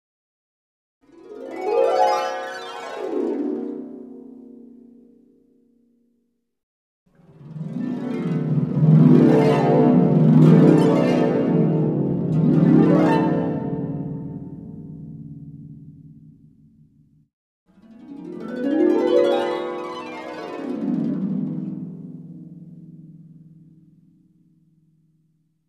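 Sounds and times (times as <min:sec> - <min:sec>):
harp arpeggio: 0:01.1 - 0:05.1, 0:07.2 - 0:15.8, 0:17.8 - 0:23.8.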